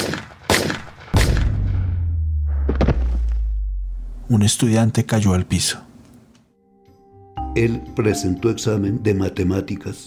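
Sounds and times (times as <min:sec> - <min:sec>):
gunshots: 0:00.0 - 0:03.2
rolling low rumble: 0:01.2 - 0:04.4
faint crack: 0:02.5 - 0:03.5
speech: 0:04.3 - 0:05.9, 0:07.6 - 0:10.0.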